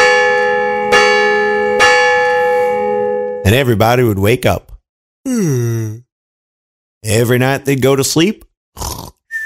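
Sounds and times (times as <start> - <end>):
large bell in a great big tower in a town tolling: 0.0 - 3.7
speech: 3.5 - 4.7, 5.3 - 6.0, 7.0 - 9.0.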